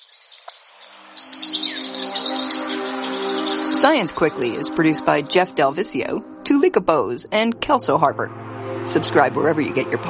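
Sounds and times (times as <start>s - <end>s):
several parrotlets chirping in high twittering bursts: 0.0s - 4.6s
speech: 3.8s - 10.0s.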